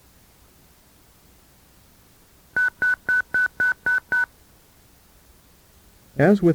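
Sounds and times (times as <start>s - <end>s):
DTMF tones from a radio repeater controller auto-dialing a phone number: 2.6s - 4.3s.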